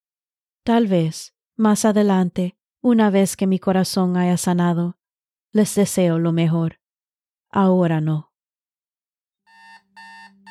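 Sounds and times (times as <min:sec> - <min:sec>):
speech: 0:00.7 - 0:06.8, 0:07.5 - 0:08.3
alarm clock ringing in harsh electronic bursts: 0:09.5 - 0:10.5.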